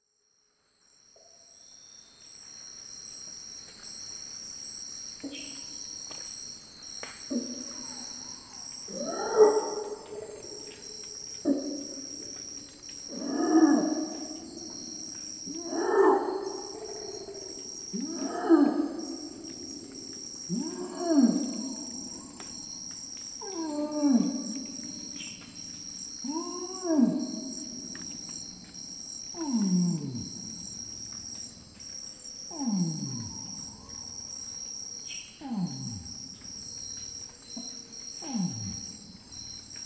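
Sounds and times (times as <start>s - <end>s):
orangutan long call: 7.3s - 30.9s, 32.5s - 34.4s, 35.3s - 36.5s, 37.6s - 39.0s.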